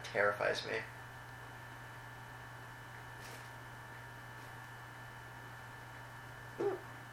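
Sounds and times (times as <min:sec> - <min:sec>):
low steady hum: 0:00.0 - 0:07.1
speech: 0:00.1 - 0:01.0
hiccup: 0:06.6 - 0:06.9.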